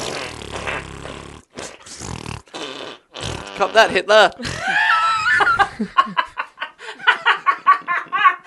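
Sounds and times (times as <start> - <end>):
fart sound effects: 0.0 - 4.6
speech: 3.6 - 4.8
laughter: 4.5 - 8.4.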